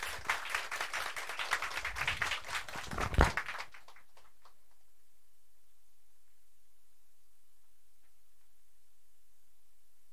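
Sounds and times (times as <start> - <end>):
audience applauding: 0.0 - 4.6
single sharp clap: 1.8 - 4.0.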